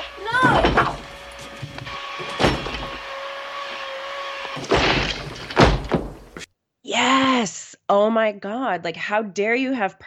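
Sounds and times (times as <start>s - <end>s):
door being kicked in: 0.3s - 3.1s, 4.5s - 6.5s
speech: 8.2s - 10.0s.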